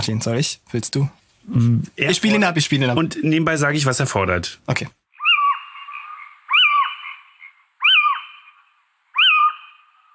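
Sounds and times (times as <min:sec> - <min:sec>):
speech: 0:00.0 - 0:05.0
little owl giving harsh squawking calls: 0:05.1 - 0:10.1.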